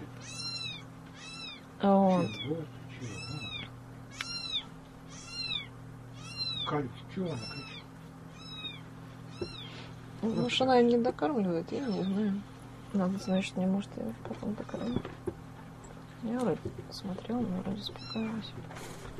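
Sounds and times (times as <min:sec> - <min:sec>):
low hum: 0:00.0 - 0:19.1
small kitten meowing in high-pitched cries: 0:00.2 - 0:10.6, 0:18.0 - 0:18.4
speech: 0:01.8 - 0:03.5, 0:06.7 - 0:07.8, 0:10.2 - 0:15.4, 0:16.2 - 0:19.1.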